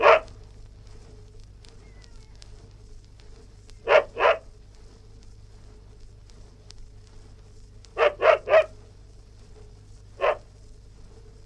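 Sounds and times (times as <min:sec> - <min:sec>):
West Highland white terrier yapping indoors: 0:00.0 - 0:00.3, 0:03.8 - 0:04.5, 0:08.0 - 0:08.7, 0:10.2 - 0:10.5
faint constant hum: 0:00.0 - 0:11.4.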